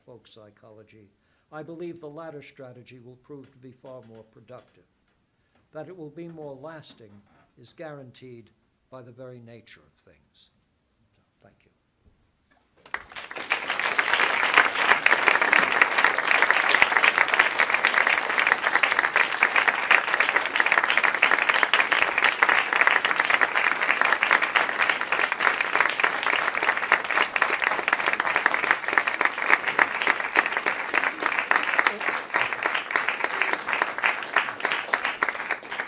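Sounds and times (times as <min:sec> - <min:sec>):
speech: 0:00.2 - 0:05.0, 0:05.7 - 0:10.6
audience clapping after a philosophy lecture: 0:12.8 - 0:35.8.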